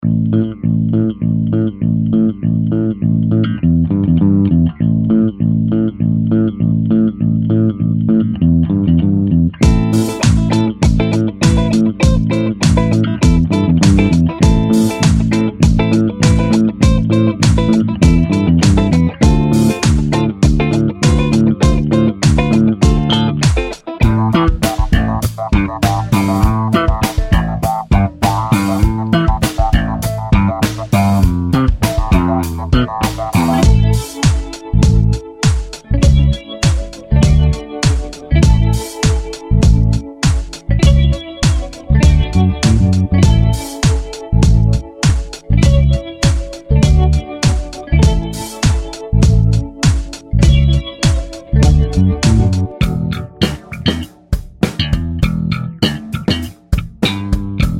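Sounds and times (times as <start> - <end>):
funk disco bass: 0.0 - 57.7.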